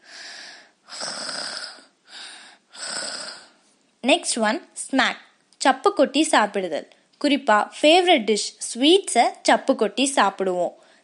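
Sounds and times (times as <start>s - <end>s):
loud raspy snoring: 0.0s - 3.6s
speech: 4.0s - 10.8s.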